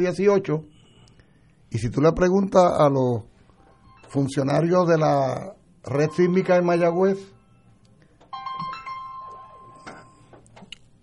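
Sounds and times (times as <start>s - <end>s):
speech: 0.0s - 0.7s, 1.7s - 3.3s, 4.1s - 7.4s
faint noise: 0.0s - 11.0s
phone ringing with a steady electronic tone: 3.5s - 10.6s.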